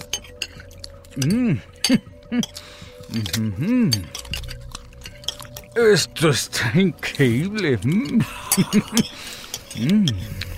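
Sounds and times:
dishes, cutlery and glasses clinking during a meal: 0:00.0 - 0:02.6, 0:03.2 - 0:05.8, 0:07.1 - 0:10.3
speech: 0:01.2 - 0:04.2, 0:05.8 - 0:10.4.

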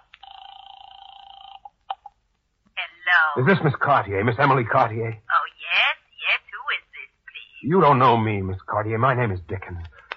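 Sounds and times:
telephone ringing for a call to a home in Louisburg Square: 0:00.2 - 0:01.8
speech: 0:03.4 - 0:05.2, 0:07.6 - 0:09.9.

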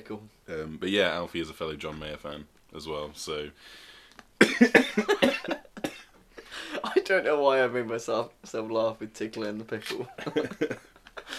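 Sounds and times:
speech: 0:00.0 - 0:05.6, 0:07.1 - 0:11.3
person coughing from a tickle in the throat: 0:04.4 - 0:07.0
laughter: 0:10.0 - 0:11.3.

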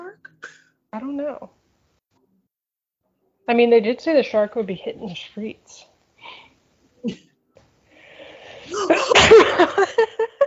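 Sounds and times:
speech: 0:00.9 - 0:01.6, 0:03.5 - 0:06.4, 0:07.0 - 0:07.3
breathy intake before a sneeze: 0:07.9 - 0:08.9
loud sneeze: 0:08.6 - 0:09.7.

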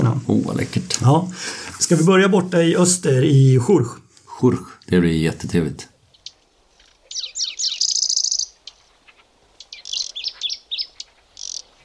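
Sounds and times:
speech: 0:00.3 - 0:05.9
sedge warbler and dusky warbler singing: 0:06.0 - 0:11.8
faint insect-like hum: 0:06.1 - 0:11.8.

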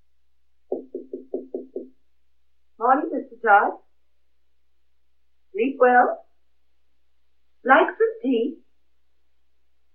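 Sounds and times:
firm knocks on a wooden door: 0:00.7 - 0:02.0
speech: 0:02.9 - 0:03.8, 0:05.8 - 0:06.2, 0:07.6 - 0:08.6.

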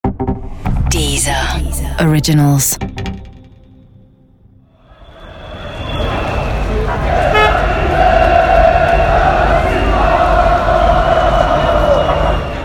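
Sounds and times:
speech: 0:01.0 - 0:02.9
horns tooting: 0:05.5 - 0:12.6
large outdoor crowd of Croatian football fans singing and chanting outside stadium: 0:06.9 - 0:12.6.

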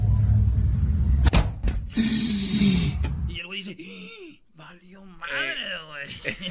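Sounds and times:
steady low engine rumble: 0:00.0 - 0:03.4
speech: 0:02.0 - 0:02.3, 0:03.7 - 0:06.5
laughter: 0:06.0 - 0:06.5.

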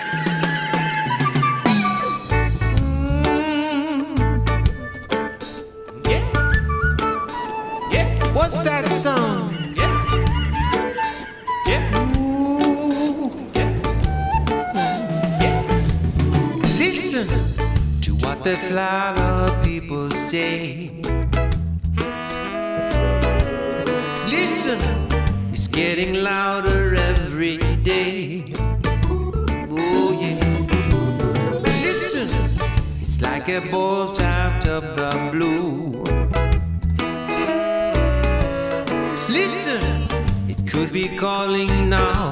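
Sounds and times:
reggae cover of a hippie song with sung vocals: 0:00.1 - 0:42.2
sung vocal melody: 0:01.7 - 0:04.6, 0:06.0 - 0:06.6, 0:07.3 - 0:21.1, 0:23.6 - 0:36.2, 0:37.3 - 0:42.2
steady loud bass-heavy reggae beat: 0:02.3 - 0:05.1, 0:06.1 - 0:07.0, 0:07.9 - 0:08.6, 0:09.8 - 0:10.8, 0:11.7 - 0:12.4, 0:13.6 - 0:14.6, 0:17.3 - 0:18.4, 0:19.2 - 0:19.9, 0:21.1 - 0:22.1, 0:22.9 - 0:23.6, 0:24.8 - 0:25.8, 0:26.7 - 0:28.0, 0:28.6 - 0:29.8, 0:32.2 - 0:33.4, 0:34.2 - 0:34.8, 0:36.1 - 0:37.1, 0:37.9 - 0:38.8, 0:39.8 - 0:41.1, 0:41.7 - 0:42.2.

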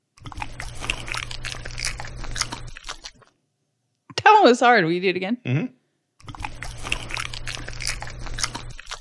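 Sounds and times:
dog chewing a banana: 0:00.2 - 0:03.3, 0:06.2 - 0:08.9
speech: 0:04.4 - 0:05.8.

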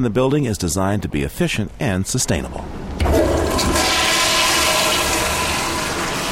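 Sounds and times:
speech: 0:00.0 - 0:03.8
toilet flushing in a building designed to clean its own water: 0:03.0 - 0:06.3.

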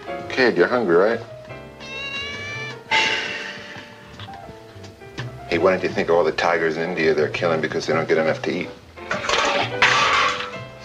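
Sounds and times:
speech: 0:00.1 - 0:01.4, 0:05.6 - 0:09.9
cat meowing: 0:01.8 - 0:02.9.

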